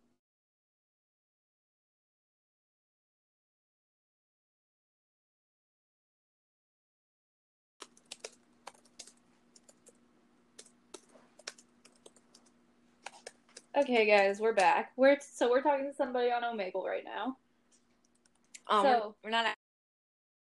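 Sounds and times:
keyboard clicks from typing messages in an online chat: 7.8 - 10.0, 10.6 - 14.8, 17.8 - 18.7
faint constant hum: 7.8 - 19.6
speech: 13.8 - 17.4, 18.7 - 19.6.

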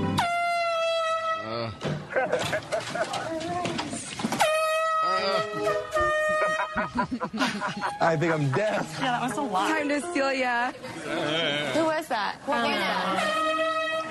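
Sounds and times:
air horn blasts blown by a woman at a cocktail party: 0.1 - 1.7, 4.4 - 6.7, 13.1 - 14.1
laughter: 2.0 - 3.5, 5.2 - 9.8
speech: 7.0 - 13.6.

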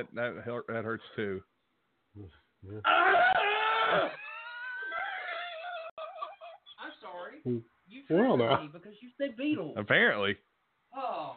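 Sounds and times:
speech: 0.0 - 1.5, 2.2 - 4.2, 7.3 - 11.3
short vocal bursts: 2.1 - 2.9
person broken wailing and yelps: 2.6 - 6.6
person letting out a loud drawn-out scream: 2.7 - 5.9.

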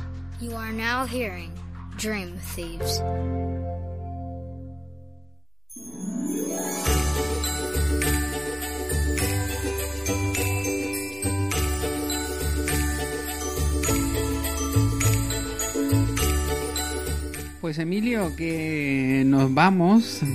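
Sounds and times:
speech: 0.4 - 3.9, 17.7 - 20.3
Christmas-style farewell theme music with jingling bells: 5.7 - 20.3.

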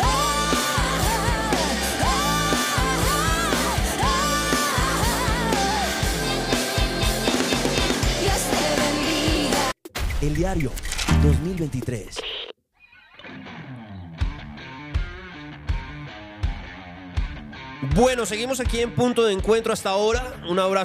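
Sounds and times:
strained shouted-sounding lead vocal: 0.0 - 9.7
loud dense rock song: 0.0 - 9.8, 13.2 - 20.8
driving drums: 0.0 - 12.1, 14.2 - 20.8
distorted guitars: 0.0 - 20.8
speech: 10.4 - 12.3, 17.9 - 20.8.

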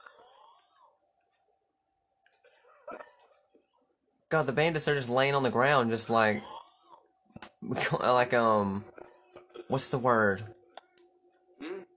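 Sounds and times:
people coughing: 2.7 - 3.3
speech: 4.3 - 6.6, 7.7 - 8.9, 9.7 - 10.6.

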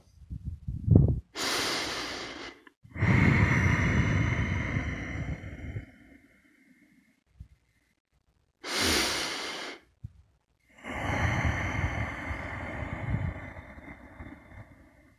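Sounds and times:
slow deep breathing in a guided breathing exercise: 1.4 - 10.0, 10.7 - 15.1.

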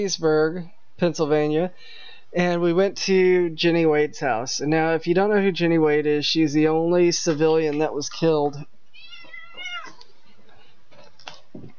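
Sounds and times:
speech: 0.0 - 8.7
cat meowing: 8.9 - 10.2.

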